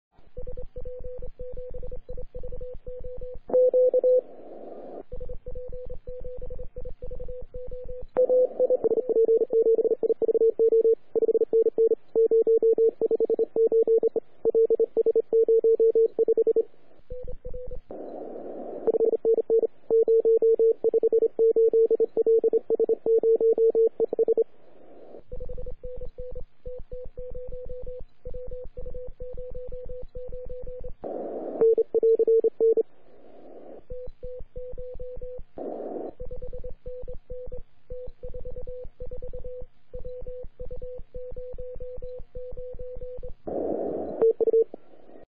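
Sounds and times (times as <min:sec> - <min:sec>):
CW Morse code radio signal on 3,5MHz: 0:07.7 - 0:16.7, 0:17.6 - 0:25.2, 0:29.4 - 0:33.8, 0:42.5 - 0:45.2.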